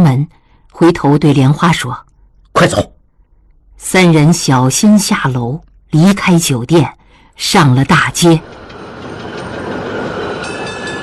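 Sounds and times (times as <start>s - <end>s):
speech: 0.2s - 2.9s, 3.8s - 8.6s
tram pulling in with heavy rail rumble: 7.5s - 11.0s.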